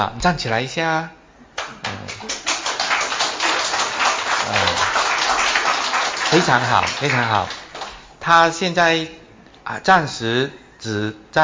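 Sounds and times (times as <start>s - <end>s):
speech: 0.0s - 1.2s, 6.3s - 7.6s, 8.2s - 11.4s
audience applause at a church gathering: 1.8s - 8.1s.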